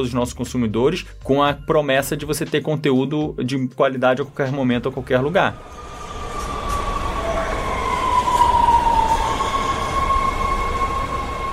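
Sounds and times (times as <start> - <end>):
speech: 0.0 - 5.9
subway train rumbling along the track: 5.0 - 11.5
subway train wheels giving off a thin metallic squeal: 5.5 - 11.5.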